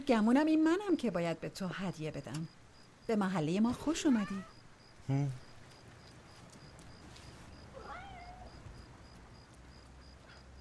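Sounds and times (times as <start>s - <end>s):
speech: 0.0s - 5.4s
cat meowing: 4.1s - 4.6s, 7.7s - 8.7s.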